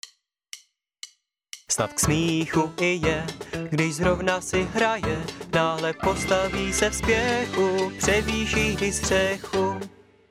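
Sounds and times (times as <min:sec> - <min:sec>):
man singing in Czech: 0:01.7 - 0:09.9.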